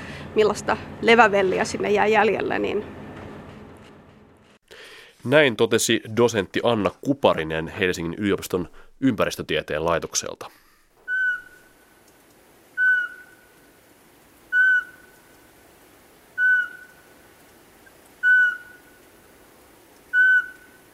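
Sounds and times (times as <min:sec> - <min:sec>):
speech: 0:00.4 - 0:03.0, 0:05.2 - 0:10.6
Eurasian pygmy owl whistled toots: 0:11.0 - 0:11.7, 0:12.8 - 0:13.4, 0:14.5 - 0:15.1, 0:16.4 - 0:17.0, 0:18.2 - 0:18.9, 0:20.1 - 0:20.8.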